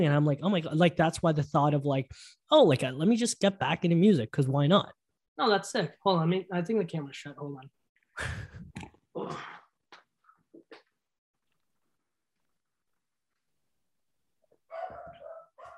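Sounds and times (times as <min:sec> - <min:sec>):
speech: 0:00.0 - 0:08.6
dog barking: 0:14.7 - 0:15.7.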